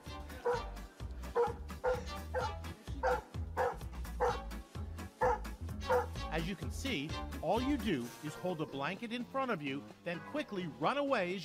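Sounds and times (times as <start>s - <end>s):
husky barking and whimpering: 0.4s - 0.7s, 1.4s - 4.4s, 5.2s - 6.2s
speech: 6.5s - 11.4s.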